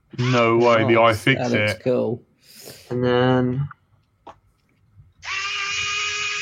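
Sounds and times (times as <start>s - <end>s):
speech: 0.3s - 3.8s
powered screwdriver fitted with bits removing bent bolts from a quadcopter: 5.2s - 6.4s.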